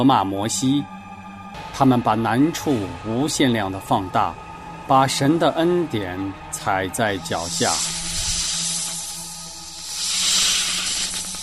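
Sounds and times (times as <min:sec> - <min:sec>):
speech: 0:00.0 - 0:08.1
many snakes hissing: 0:07.1 - 0:11.4.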